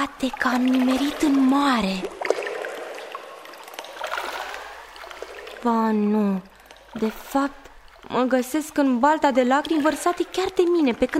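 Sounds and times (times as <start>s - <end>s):
speech: 0.0s - 2.2s, 5.6s - 11.1s
water sloshing and splashing: 0.0s - 11.1s.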